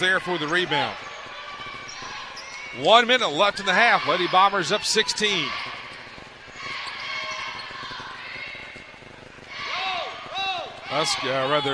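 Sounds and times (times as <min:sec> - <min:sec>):
speech: 0:00.0 - 0:01.1, 0:02.8 - 0:05.7, 0:10.9 - 0:11.7
basketball dribbled on the court at the top of the key during a women's game: 0:00.6 - 0:02.8, 0:05.0 - 0:11.3.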